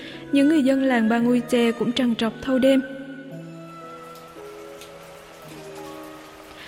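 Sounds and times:
speech: 0:00.3 - 0:03.0
steady rain pattering: 0:03.6 - 0:06.6.

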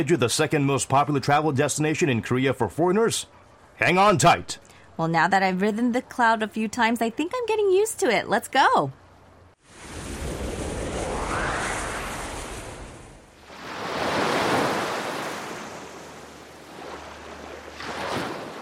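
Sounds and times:
speech: 0:00.0 - 0:09.0
ocean waves breaking on shore: 0:09.6 - 0:18.6.

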